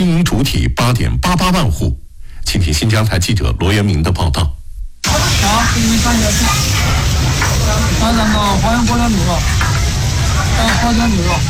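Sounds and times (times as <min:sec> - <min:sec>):
speech: 0:00.0 - 0:09.7, 0:10.6 - 0:11.4
meat slices sizzling on a grill plate in a self-service barbecue restaurant: 0:05.0 - 0:11.4.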